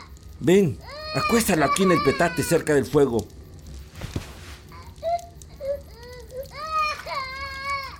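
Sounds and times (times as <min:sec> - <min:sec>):
speech: 0:00.4 - 0:03.4
sick feverish baby crying: 0:00.8 - 0:02.8, 0:04.7 - 0:07.9.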